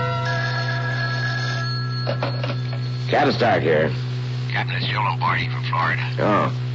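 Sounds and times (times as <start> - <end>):
telephone ringing on the line: 0.2 - 3.7
speech: 3.1 - 6.6.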